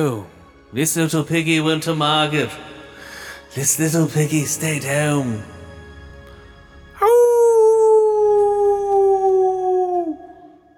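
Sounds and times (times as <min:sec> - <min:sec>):
speech: 0:00.0 - 0:02.8, 0:03.5 - 0:05.6
man howling like a wolf: 0:07.0 - 0:10.7.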